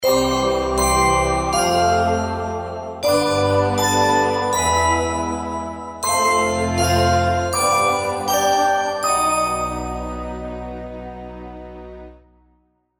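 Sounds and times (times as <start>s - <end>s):
jingle: 0.0s - 12.2s.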